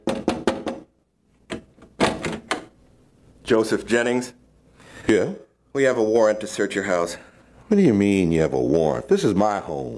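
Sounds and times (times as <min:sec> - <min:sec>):
knocking on the front door of a family home in Wisconsin: 0:00.0 - 0:00.9
speech: 0:03.5 - 0:04.4, 0:05.0 - 0:09.9.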